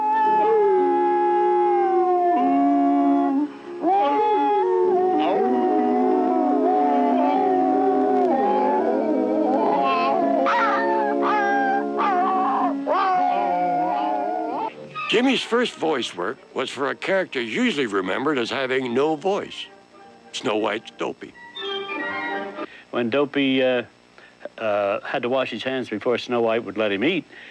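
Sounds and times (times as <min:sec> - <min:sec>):
man imitating hound dogs howling for an animated film: 0:00.0 - 0:15.6
speech: 0:15.2 - 0:19.7, 0:20.4 - 0:21.4, 0:22.9 - 0:24.0, 0:24.6 - 0:27.4.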